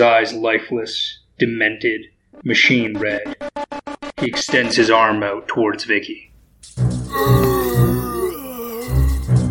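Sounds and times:
speech: 0.0s - 3.5s, 4.2s - 7.6s
strained groaning: 7.1s - 9.4s.

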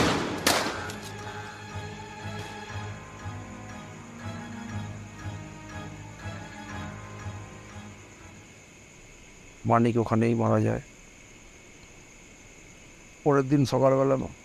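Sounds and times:
gunshot from paramilitary police: 0.0s - 0.9s
speech: 9.6s - 10.9s, 13.2s - 14.4s.

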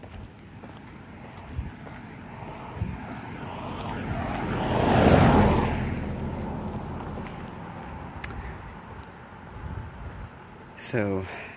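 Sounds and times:
car passing by: 0.8s - 9.0s
wind noise: 1.2s - 10.8s
speech: 10.9s - 11.5s.

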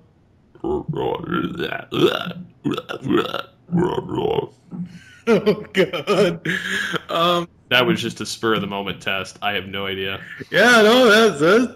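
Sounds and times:
long drawn-out forced stunt burps: 0.6s - 5.0s, 6.1s - 7.5s
speech: 0.7s - 11.7s
laughter: 4.9s - 7.5s.

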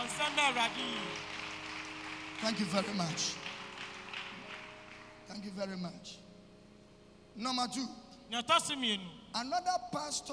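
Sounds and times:
crowd applauding: 0.0s - 5.4s
speech: 0.1s - 1.3s, 2.4s - 3.5s, 5.3s - 6.2s, 7.4s - 10.3s.

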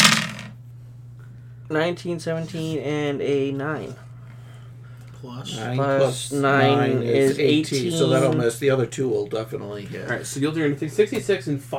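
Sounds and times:
dice rolling across a tabletop: 0.0s - 0.6s
low steady hum: 0.0s - 11.7s
speech: 1.7s - 4.1s, 5.2s - 11.7s.

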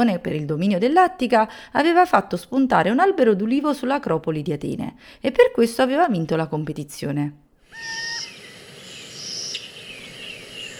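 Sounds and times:
speech: 0.0s - 8.1s
faint outdoor ambience: 7.6s - 10.7s
little owl calling: 7.6s - 10.7s
high buzzing insect or cricket chirps: 7.7s - 10.7s.

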